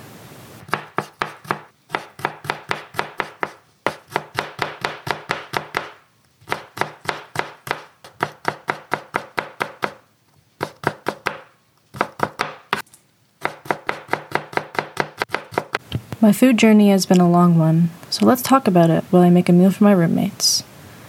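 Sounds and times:
knife chopping vegetables on a cutting board: 0.7s - 10.0s, 10.6s - 12.8s, 13.4s - 15.9s
speech: 16.2s - 20.7s.

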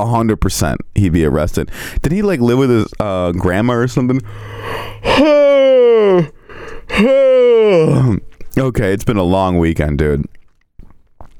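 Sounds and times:
speech: 0.0s - 10.4s
person yawning loudly: 4.2s - 8.2s.

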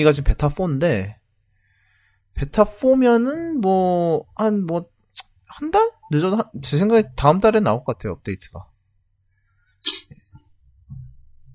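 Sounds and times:
speech: 0.0s - 1.2s, 2.4s - 4.9s, 5.5s - 8.7s, 9.8s - 10.2s
catches of breath: 1.5s - 2.3s
person coughing: 9.8s - 10.2s.

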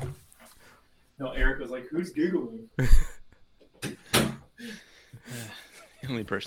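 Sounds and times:
speech: 1.2s - 3.2s, 6.1s - 6.4s
door swinging and shutting with a latch click: 1.4s - 1.6s, 3.8s - 4.4s.

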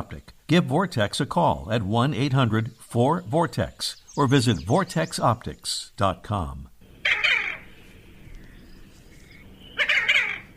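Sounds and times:
speech: 0.1s - 6.7s
chunky medium-sized diving duck calls: 7.0s - 7.8s, 9.6s - 10.5s.

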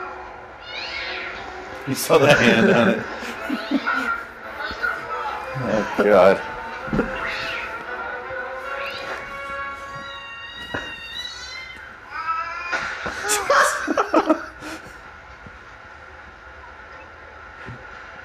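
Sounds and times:
Siamese cat meowing: 0.6s - 1.5s, 3.5s - 6.2s, 7.0s - 7.8s, 8.6s - 12.8s
speech: 1.8s - 3.9s, 5.9s - 7.2s
people chuckling and laughing: 1.9s - 7.3s, 13.2s - 14.8s.

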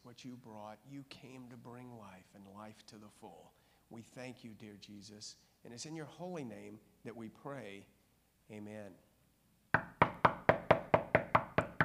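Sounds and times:
speech: 0.2s - 9.1s
firm knocks on a wooden door: 9.8s - 11.8s.

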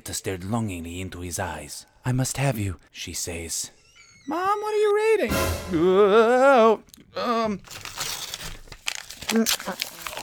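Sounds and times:
speech: 0.1s - 8.1s, 9.3s - 9.9s
crinkly paper being crumpled and chewed: 6.8s - 10.2s.

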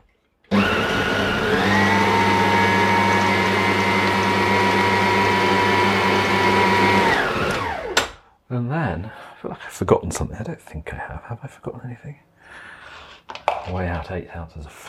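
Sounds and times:
electric mixer blending baking ingredients: 0.5s - 8.1s
speech: 9.8s - 12.7s, 13.7s - 14.8s.

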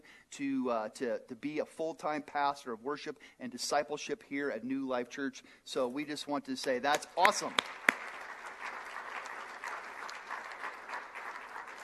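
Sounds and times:
speech: 0.3s - 7.8s
large church audience applauding: 7.2s - 11.8s.

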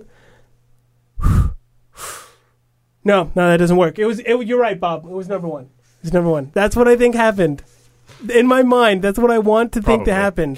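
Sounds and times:
person breathing out forcefully and breathing in: 0.0s - 0.6s, 1.2s - 2.6s
speech: 3.1s - 10.5s.

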